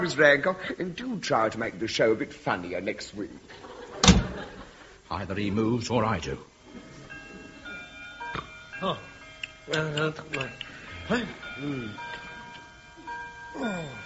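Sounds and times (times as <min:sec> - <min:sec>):
speech: 0:00.0 - 0:06.5, 0:08.8 - 0:09.1, 0:09.7 - 0:12.1, 0:13.6 - 0:14.0
clock ticking: 0:07.1 - 0:14.0
voices murmuring and sighing: 0:08.8 - 0:12.6, 0:13.5 - 0:14.0.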